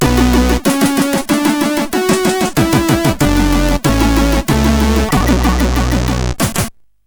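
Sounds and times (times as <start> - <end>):
SID chip loader music on CSG8580R5: 0.0 - 6.7.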